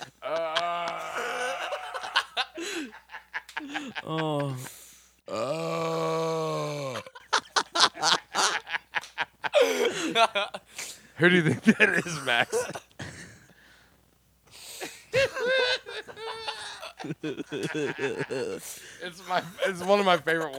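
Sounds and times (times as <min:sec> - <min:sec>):
bursts of snickering laughter: 0:00.0 - 0:04.7, 0:06.9 - 0:10.7, 0:15.1 - 0:20.5
loud drawn-out resonant groaning burp: 0:00.2 - 0:02.1, 0:05.3 - 0:07.2
speech: 0:04.1 - 0:04.8, 0:11.2 - 0:12.8, 0:17.3 - 0:20.5.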